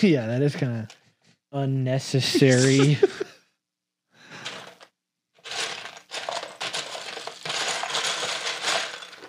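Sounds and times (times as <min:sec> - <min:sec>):
speech: 0:00.0 - 0:03.4
laughter: 0:02.2 - 0:03.4
small hard plastic Lego pieces clattering as a hand rummages: 0:04.4 - 0:09.2.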